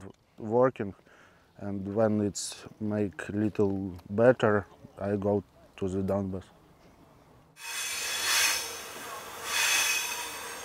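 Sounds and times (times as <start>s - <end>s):
speech: 0.4s - 6.6s
night train running on rails: 7.6s - 10.6s.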